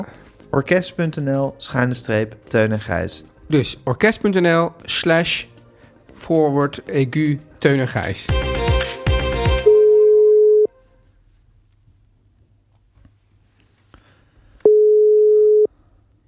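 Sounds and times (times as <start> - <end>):
speech: 0.0 - 5.5, 6.2 - 8.4
telephone ringback tone while waiting for someone to answer: 9.7 - 10.8, 14.7 - 15.7.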